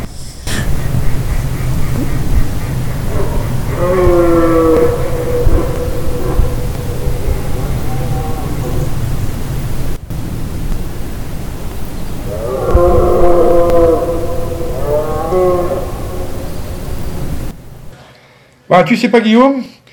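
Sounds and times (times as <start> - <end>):
steady hiss of noise: 0.0 - 19.9
red deer stags bellowing during the rut: 0.4 - 9.9, 12.1 - 17.9
speech: 18.8 - 19.8.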